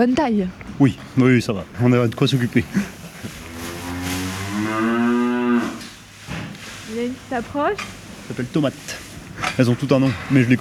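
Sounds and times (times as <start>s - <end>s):
speech: 0.0s - 3.4s, 7.3s - 9.0s, 9.6s - 10.5s
Prim'Holstein dairy cow mooing in a cubicle dairy barn: 3.4s - 6.0s.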